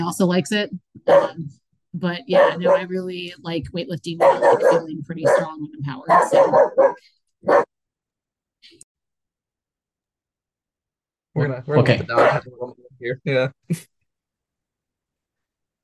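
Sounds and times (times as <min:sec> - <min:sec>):
speech: 0:00.0 - 0:07.7, 0:11.4 - 0:13.9
dog barking and yelping: 0:01.0 - 0:01.4, 0:02.3 - 0:02.9, 0:04.2 - 0:07.7, 0:12.1 - 0:12.5.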